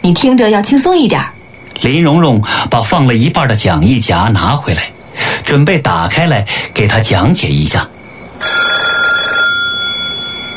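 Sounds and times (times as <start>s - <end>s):
speech: 0.0s - 7.9s
desk telephone ringing electronically: 8.3s - 10.5s.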